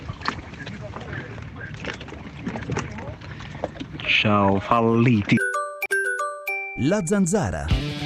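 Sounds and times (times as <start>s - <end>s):
wind and water noise around a boat at sea: 0.0s - 5.4s
speech: 4.2s - 5.4s, 6.8s - 7.9s.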